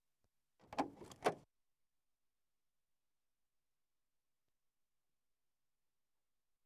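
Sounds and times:
Landrover Safari diesel door: 0:00.7 - 0:01.4.

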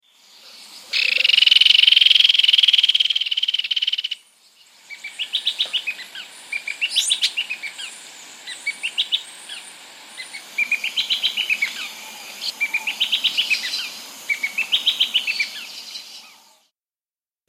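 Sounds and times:
Guianan Streaked-Antwren in S. America: 0:00.0 - 0:16.7.

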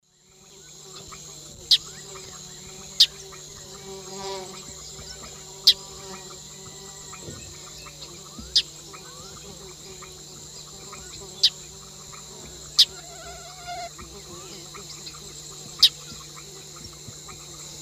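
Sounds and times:
Agelasticus xanthophthalmus calls in the Eastern Lowlands of South America: 0:01.0 - 0:17.7.

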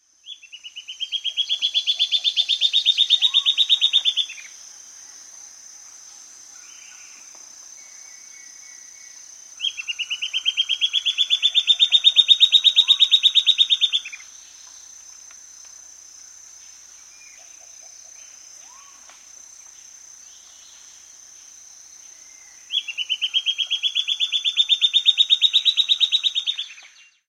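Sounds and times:
silvered antbird of South America: 0:00.3 - 0:04.5, 0:09.6 - 0:14.3, 0:17.1 - 0:19.1, 0:22.2 - 0:27.2.

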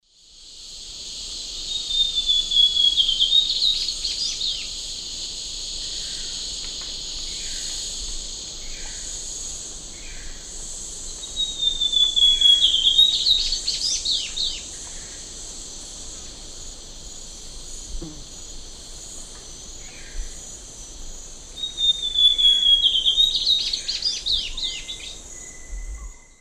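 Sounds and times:
Cyanocompsa cyanoides singing in South American eastern lowlands: 0:01.7 - 0:04.8, 0:11.2 - 0:15.2, 0:21.5 - 0:26.4.

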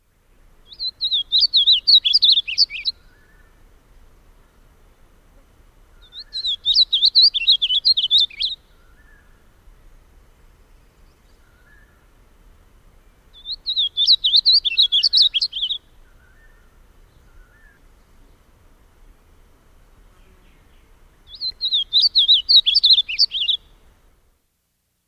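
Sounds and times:
Gray-crowned Yellowthroat calling in South America: 0:00.7 - 0:03.6, 0:05.9 - 0:09.4, 0:13.3 - 0:17.8, 0:20.5 - 0:23.7.

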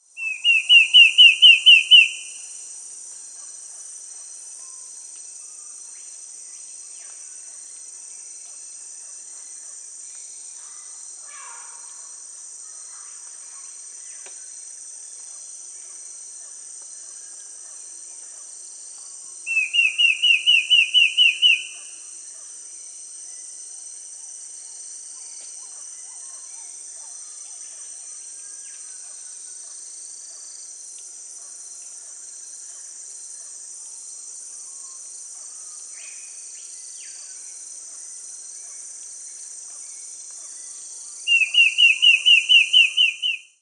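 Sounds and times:
Sooty Antbird Myrmeciza fortis calling in Peru: 0:00.2 - 0:02.3, 0:19.5 - 0:21.8, 0:41.3 - 0:43.4.

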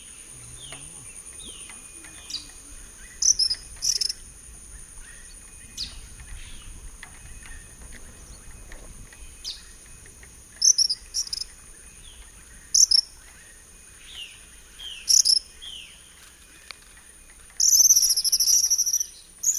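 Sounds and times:
low slurred bird notes: 0:00.0 - 0:19.5
steady high insect drone: 0:00.0 - 0:19.5
tropical kingbird twittering in the eastern lowlands of South America: 0:00.4 - 0:06.4, 0:10.6 - 0:13.4, 0:14.1 - 0:16.0, 0:17.6 - 0:19.5.

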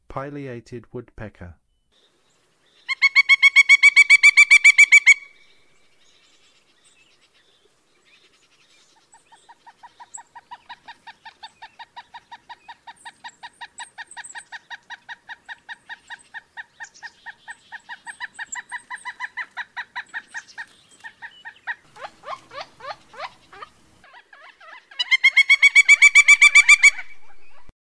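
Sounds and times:
Pileated Woodpecker in North America: 0:02.8 - 0:05.4, 0:08.1 - 0:27.7.

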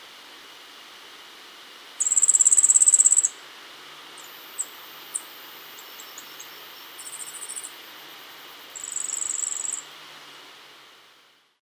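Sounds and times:
steady background hiss: 0:00.0 - 0:11.6
yellow-faced grassquit high buzzy trill in Ecuador: 0:02.0 - 0:03.4, 0:04.2 - 0:09.9.

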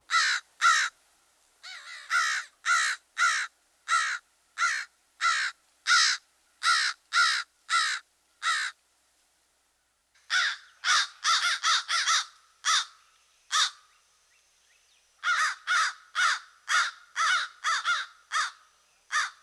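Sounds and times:
American crow cawing in harsh bursts: 0:00.1 - 0:01.0, 0:01.6 - 0:08.8, 0:10.3 - 0:13.9, 0:15.2 - 0:19.4.

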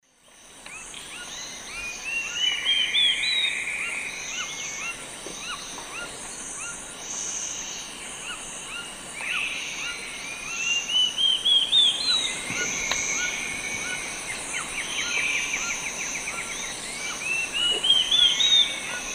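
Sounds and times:
Sittasomus griseicapillus song in the Eastern Lowlands of South America: 0:00.1 - 0:19.1.

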